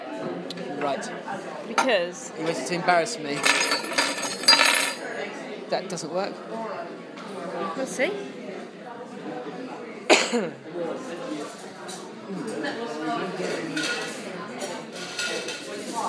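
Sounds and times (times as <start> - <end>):
indistinct voices murmuring: 0.0 - 16.0
speech: 0.8 - 4.2, 5.7 - 8.4, 10.3 - 10.6, 12.6 - 14.1
cutlery and dishes clattering: 3.3 - 5.0, 13.3 - 16.0.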